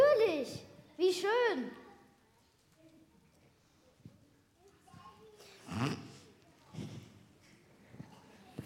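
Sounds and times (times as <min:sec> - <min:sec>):
speech: 0:01.1 - 0:01.8
wet snorting nose sniffles: 0:05.4 - 0:07.2.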